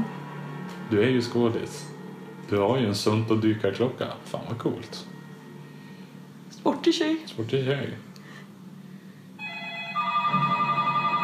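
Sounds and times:
speech: 0:00.9 - 0:05.1, 0:06.8 - 0:08.1
several telephones ringing: 0:09.4 - 0:11.2.

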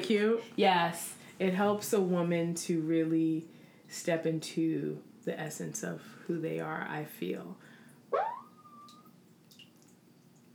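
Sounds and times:
low hum: 0:00.0 - 0:10.5
speech: 0:00.1 - 0:08.4
siren wailing outside: 0:08.2 - 0:09.1.

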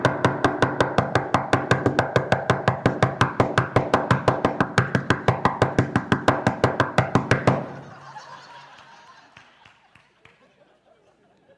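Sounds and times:
knocking on a door: 0:00.0 - 0:07.6
laughter: 0:07.7 - 0:11.5.

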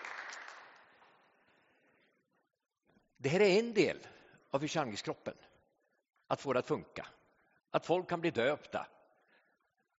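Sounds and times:
crowd applauding: 0:00.0 - 0:01.1
speech: 0:03.2 - 0:05.5, 0:06.3 - 0:09.0.

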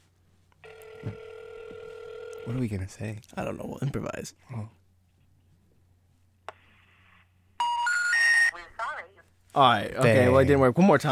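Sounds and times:
outgoing call ringback tone through a phone line: 0:00.6 - 0:02.6, 0:07.6 - 0:08.5
speech: 0:01.0 - 0:01.2, 0:02.5 - 0:04.8, 0:09.6 - 0:11.0.

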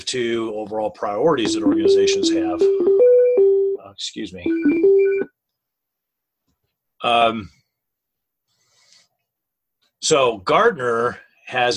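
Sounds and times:
speech: 0:00.1 - 0:03.0, 0:03.9 - 0:05.4, 0:07.0 - 0:07.6, 0:10.0 - 0:11.7
phone ringer: 0:01.4 - 0:03.8, 0:04.5 - 0:05.3.

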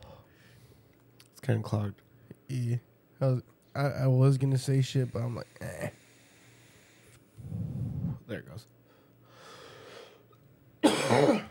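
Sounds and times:
speech: 0:01.5 - 0:06.0, 0:08.3 - 0:08.8
loud raspy cough: 0:10.8 - 0:11.4.

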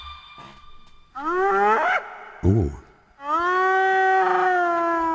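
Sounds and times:
laughing hyena whooping howl: 0:01.2 - 0:02.2, 0:03.2 - 0:05.1
speech: 0:02.5 - 0:02.8.

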